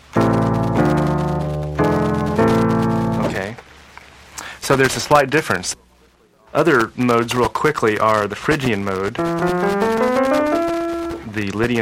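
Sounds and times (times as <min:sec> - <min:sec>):
minor scale played on a keyboard-like instrument: 0:00.0 - 0:03.4, 0:09.2 - 0:11.3
speech: 0:04.7 - 0:05.8, 0:06.5 - 0:10.1, 0:11.3 - 0:11.8.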